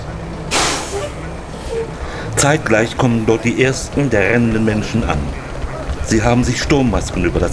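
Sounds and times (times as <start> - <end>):
street-cleaning truck engine rumble: 0.0 - 7.5
street-cleaning truck air-brake hiss: 0.5 - 1.7
speech: 1.7 - 5.4, 6.1 - 7.5.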